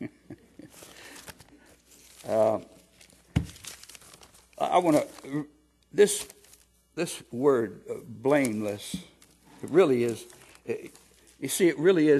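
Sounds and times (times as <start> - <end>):
paper being shuffled and handled: 0.7 - 5.3, 6.1 - 6.7, 8.3 - 11.4
speech: 2.3 - 2.7, 4.7 - 6.4, 7.0 - 12.1.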